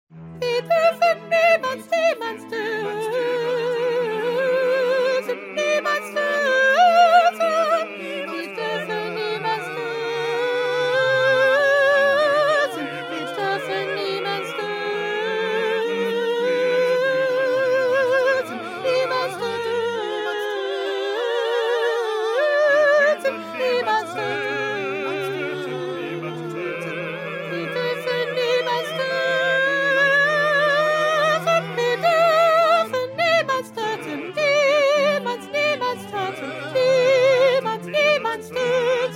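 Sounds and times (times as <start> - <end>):
small soprano choir singing: 0.4 - 39.1.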